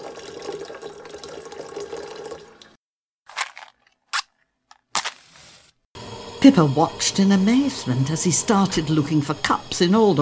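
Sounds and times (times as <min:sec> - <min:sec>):
water pouring into a kettle: 0:00.0 - 0:02.8, 0:06.0 - 0:10.1
speech: 0:06.4 - 0:10.1.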